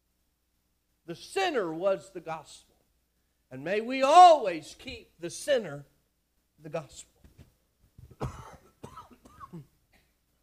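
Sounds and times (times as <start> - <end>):
speech: 1.1 - 2.7, 3.5 - 5.9, 6.6 - 7.1
hoarse throat clearing: 8.1 - 10.2
person coughing with a rough throaty rasp: 8.1 - 10.2.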